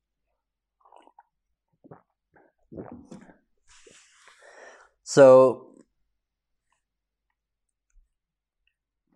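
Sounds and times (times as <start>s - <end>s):
person drinking water with wet sips and gulping swallows: 0.2s - 4.5s
breathy exhale: 3.7s - 5.0s
speech: 5.1s - 5.6s.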